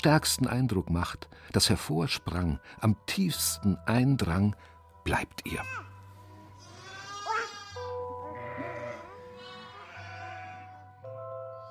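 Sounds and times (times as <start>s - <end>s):
speech: 0.0s - 5.9s
sheep bleating: 6.6s - 10.8s.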